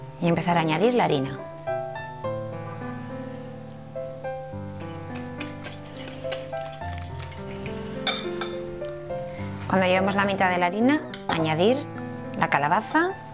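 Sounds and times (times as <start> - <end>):
music: 0.0 - 13.3
speech: 0.2 - 1.5, 9.7 - 13.2
utensil stirring fresh baker's yeast into lukewarm water in a bowl: 4.8 - 8.7.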